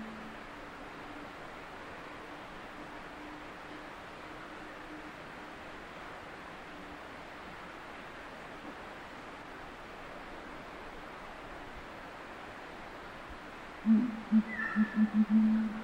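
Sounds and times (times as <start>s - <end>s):
imperial pigeon calling: 13.9s - 15.7s.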